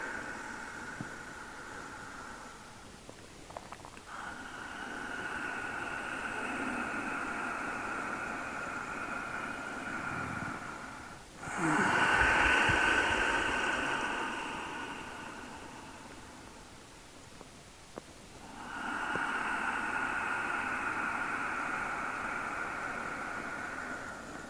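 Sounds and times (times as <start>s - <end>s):
deep slow exhales during a breathing exercise: 0.0s - 17.2s, 18.4s - 24.4s.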